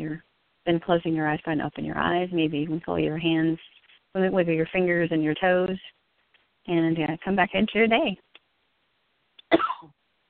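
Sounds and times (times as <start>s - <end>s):
speech: 0.0s - 6.0s, 6.6s - 8.3s
cough during a guided breathing and relaxation exercise: 9.5s - 10.0s.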